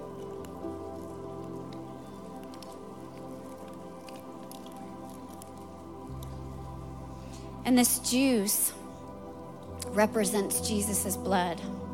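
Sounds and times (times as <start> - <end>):
plastic seals being peeled off small communion cups: 0.1 - 6.3
speech: 7.7 - 8.8, 9.9 - 11.8.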